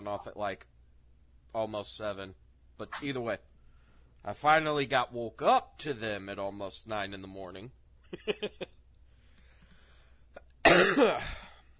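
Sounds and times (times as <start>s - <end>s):
speech: 0.1s - 0.8s, 1.5s - 3.5s, 4.2s - 8.8s, 10.7s - 11.4s
loud harsh throat clearing with a rasping gurgling tail: 10.4s - 11.6s
short throat-clearing coughs: 10.6s - 11.6s.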